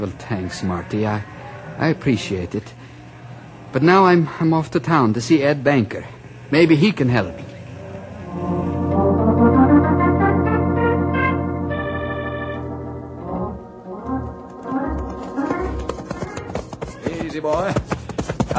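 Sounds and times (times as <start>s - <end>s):
speech: 0.0s - 2.8s, 3.7s - 7.5s
sustained orchestral music: 8.3s - 17.1s
horse hooves clip-clopping: 14.5s - 18.5s.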